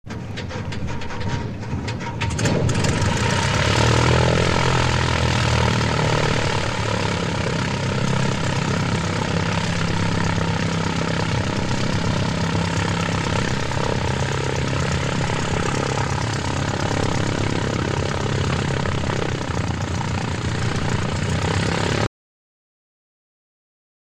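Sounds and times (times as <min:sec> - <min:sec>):
Cessna aircraft engine ignition: 0:00.1 - 0:22.1.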